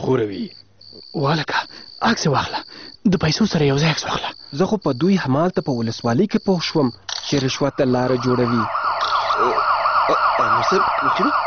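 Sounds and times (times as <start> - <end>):
speech: 0.0 - 8.8, 9.4 - 11.4
police car siren wailing: 7.7 - 11.4.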